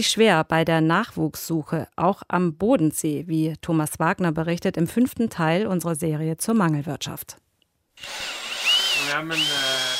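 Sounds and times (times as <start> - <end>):
speech: 0.0 - 7.4, 8.0 - 8.4, 9.1 - 9.8
power drill whirring on a building shell balcony fitting Douglas fir decking: 8.0 - 9.9.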